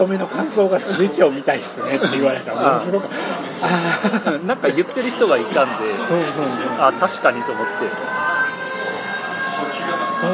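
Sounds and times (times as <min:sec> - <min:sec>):
speech: 0:00.0 - 0:08.2
laughter: 0:00.0 - 0:09.2
noise: 0:00.0 - 0:10.3
siren sounding outside: 0:04.8 - 0:10.3.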